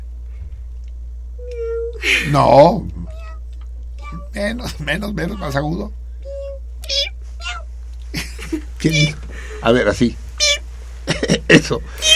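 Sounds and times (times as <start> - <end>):
steady low hum: 0.0 - 12.1
person imitating a cat meowing: 1.4 - 2.0, 2.8 - 3.4, 4.0 - 7.7, 8.9 - 9.2, 10.4 - 10.6, 12.0 - 12.1
speech: 2.0 - 3.0, 4.4 - 6.0, 8.8 - 10.2, 11.3 - 12.1
laughter: 8.1 - 9.6, 11.1 - 11.9.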